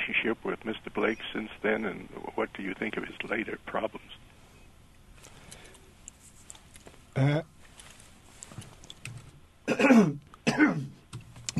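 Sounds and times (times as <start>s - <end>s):
speech: 0.2s - 4.2s, 7.2s - 7.5s
harsh raspy coughing: 9.7s - 11.0s
throat clearing: 9.7s - 11.0s.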